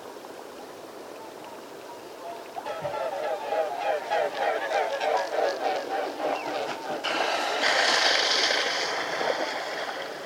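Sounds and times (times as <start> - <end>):
steady background hiss: 0.0 - 10.2
mute swan nasal honking calls: 2.2 - 7.6.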